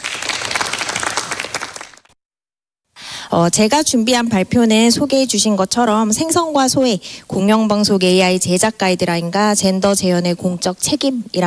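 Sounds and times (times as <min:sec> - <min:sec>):
audience applauding to welcome a speaker: 0:00.0 - 0:02.2
speech: 0:03.3 - 0:11.4.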